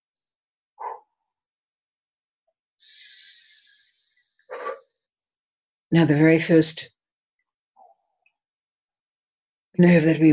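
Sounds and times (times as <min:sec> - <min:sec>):
dog barking: 0:00.8 - 0:01.2
speech: 0:05.9 - 0:07.0, 0:09.8 - 0:10.3.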